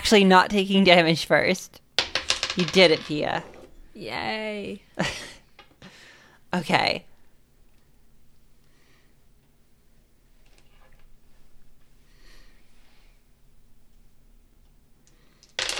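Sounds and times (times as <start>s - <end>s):
speech: 0.1s - 1.8s, 2.6s - 5.3s, 6.5s - 7.1s
dice clattering on a hard surface: 2.0s - 3.7s, 15.4s - 15.7s.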